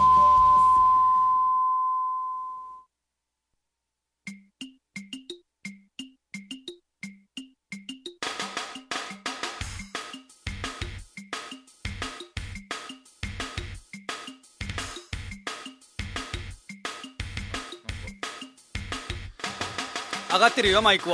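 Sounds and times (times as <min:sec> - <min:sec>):
fuller music: 0:00.0 - 0:01.3, 0:04.2 - 0:21.1
final long beep of a radio time signal: 0:00.0 - 0:02.8
speech: 0:20.3 - 0:21.1.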